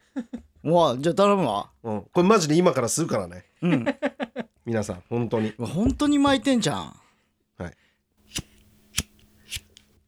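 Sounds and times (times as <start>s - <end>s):
speech: 0.2s - 7.0s, 7.6s - 8.5s
cigarette lighter clicking metallically: 8.3s - 9.9s.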